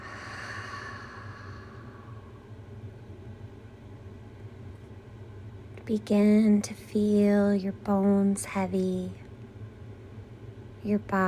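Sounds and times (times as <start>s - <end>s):
deep exhale through an open mouth: 0.0s - 2.4s
low noise: 0.0s - 11.2s
speech: 5.9s - 9.2s, 10.8s - 11.2s.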